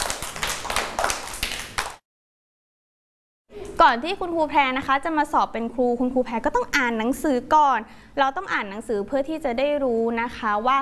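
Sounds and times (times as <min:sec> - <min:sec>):
group of children clapping for a guest: 0:00.0 - 0:02.0
speech: 0:03.8 - 0:10.8.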